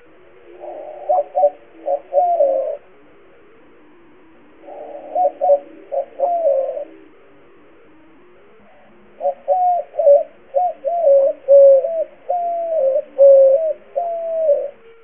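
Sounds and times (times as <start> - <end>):
white-winged dove: 0.0 - 15.0.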